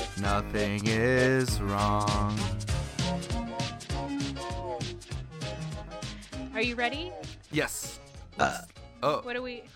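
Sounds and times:
speech: 0.2 - 4.5, 6.6 - 9.7
loud guttural burp: 8.4 - 9.2.

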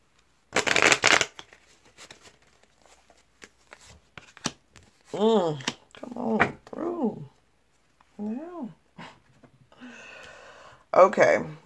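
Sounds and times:
tarot cards being shuffled: 0.5 - 6.8
speech: 5.1 - 7.2, 11.0 - 11.6.

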